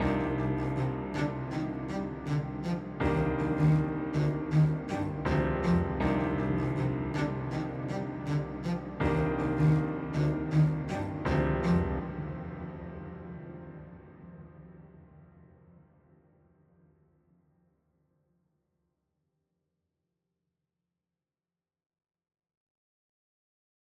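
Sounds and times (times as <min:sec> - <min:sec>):
cello: 0:00.0 - 0:13.5
piano: 0:00.0 - 0:16.4.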